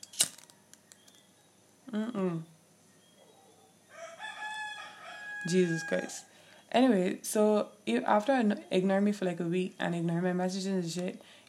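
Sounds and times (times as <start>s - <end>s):
speech: 1.9s - 2.5s, 5.4s - 11.4s
rooster crowing: 3.3s - 6.4s.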